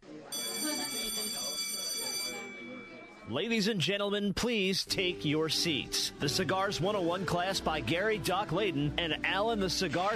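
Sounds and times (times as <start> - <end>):
school bell ringing: 0.3 - 3.3
speech: 3.3 - 10.1.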